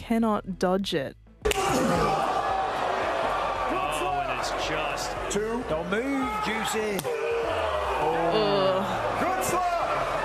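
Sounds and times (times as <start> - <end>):
speech: 0.1 - 2.3, 4.4 - 10.0
sharp open-handed slap to the face: 1.4 - 1.8
voices shouting over one another: 1.4 - 10.2
loud excited crowd whooping: 1.5 - 10.2.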